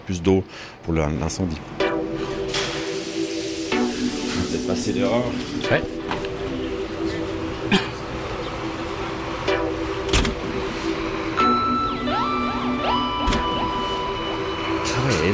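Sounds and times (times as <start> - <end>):
speech: 0.1 - 1.9, 4.0 - 6.2, 15.2 - 15.3
sweeping tones: 1.5 - 15.3
many vehicles and fire-service trucks passing outdoors at a fire scene: 6.2 - 13.3.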